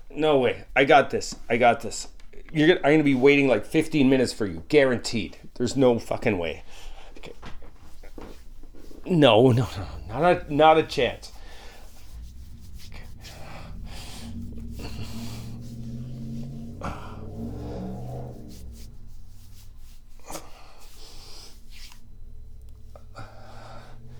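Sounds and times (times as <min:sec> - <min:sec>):
speech: 0:00.1 - 0:07.5, 0:09.0 - 0:11.3
car engine accelerating: 0:09.2 - 0:24.1.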